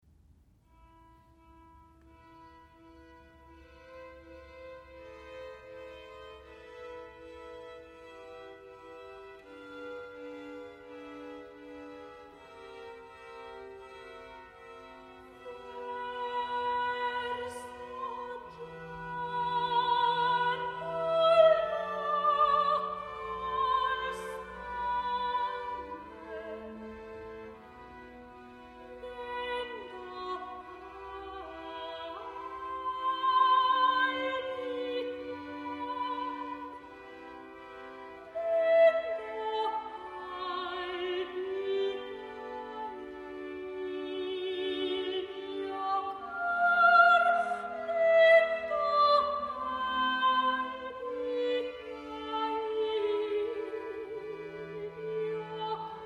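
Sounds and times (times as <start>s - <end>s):
opera soprano singing: 15.2s - 27.7s, 28.8s - 56.0s.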